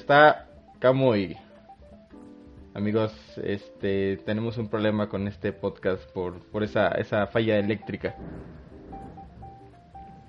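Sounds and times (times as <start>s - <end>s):
speech: 0.1s - 1.4s, 2.8s - 8.6s
rumble of thunder during a storm: 8.1s - 10.2s.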